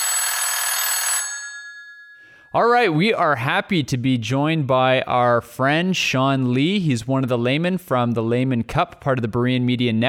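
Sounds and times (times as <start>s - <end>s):
telephone bell ringing: 0.0s - 2.6s
speech: 2.5s - 10.0s.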